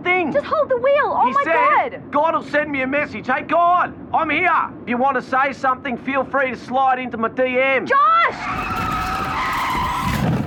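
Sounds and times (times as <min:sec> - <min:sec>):
speech: 0:00.2 - 0:08.9
car skidding with tire screech: 0:08.3 - 0:10.4.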